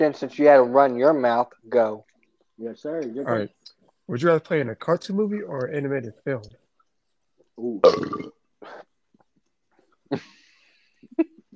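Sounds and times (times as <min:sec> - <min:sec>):
speech: 0:00.0 - 0:06.6, 0:07.6 - 0:08.8, 0:10.1 - 0:10.4
loud rumbling burp: 0:07.8 - 0:08.4.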